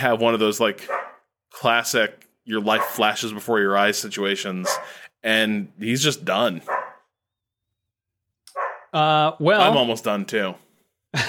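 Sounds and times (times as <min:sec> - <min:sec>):
speech: 0:00.0 - 0:01.0, 0:01.6 - 0:06.8, 0:08.9 - 0:11.2
dog barking: 0:00.9 - 0:01.2, 0:02.8 - 0:03.0, 0:04.6 - 0:05.0, 0:06.7 - 0:07.1, 0:08.5 - 0:09.0.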